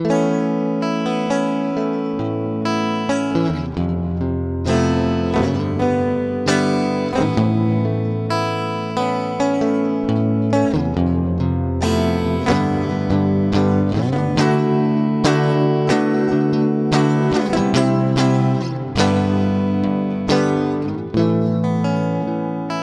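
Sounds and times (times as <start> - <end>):
chords in a hall: 0.0 - 22.8.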